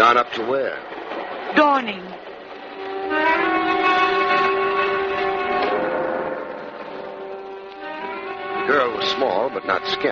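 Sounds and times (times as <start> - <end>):
speech: 0.0 - 2.3, 8.7 - 10.1
passing train horn-like tone: 2.6 - 10.1.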